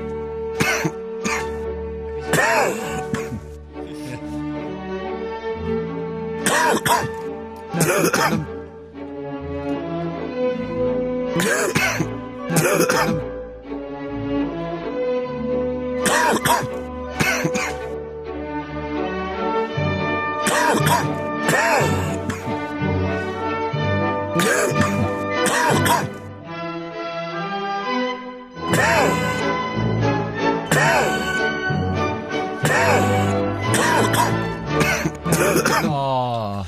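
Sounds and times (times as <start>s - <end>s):
sustained tonal music: 0.0s - 36.6s
harsh coughing: 0.6s - 1.6s, 2.2s - 4.4s, 6.4s - 8.5s, 11.4s - 13.3s, 16.0s - 18.0s, 20.4s - 22.7s, 24.4s - 26.2s, 28.7s - 29.4s, 30.7s - 31.4s, 32.6s - 36.6s
throat clearing: 0.6s - 1.6s, 2.3s - 4.4s, 6.4s - 7.2s, 7.8s - 8.5s, 11.4s - 13.2s, 16.0s - 17.9s, 20.5s - 22.6s, 24.4s - 26.2s, 28.7s - 29.4s, 30.7s - 31.4s, 32.6s - 36.6s.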